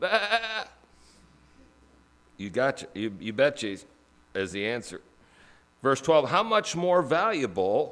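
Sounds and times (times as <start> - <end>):
speech: 0.0 - 0.4, 2.4 - 5.1, 5.8 - 7.9
single sheep bleating: 0.0 - 0.8.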